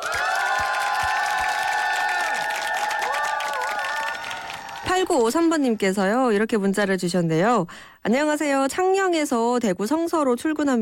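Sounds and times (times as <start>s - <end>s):
crowd applause: 0.0s - 5.4s
speech: 4.9s - 10.8s.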